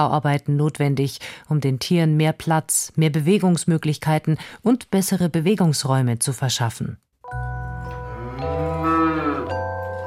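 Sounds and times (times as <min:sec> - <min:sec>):
speech: 0:00.0 - 0:07.4
cow mooing: 0:08.0 - 0:09.7.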